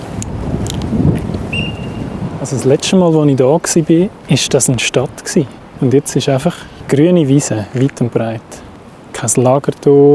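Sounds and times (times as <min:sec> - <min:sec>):
wind blowing hard across the microphone: 0:00.0 - 0:10.1
faint thin whistle: 0:01.5 - 0:02.2
speech: 0:02.4 - 0:10.1.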